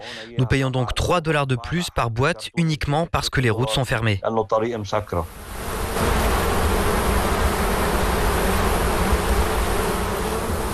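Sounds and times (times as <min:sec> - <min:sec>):
speech: 0:00.2 - 0:06.3
many bees buzzing: 0:05.2 - 0:10.7.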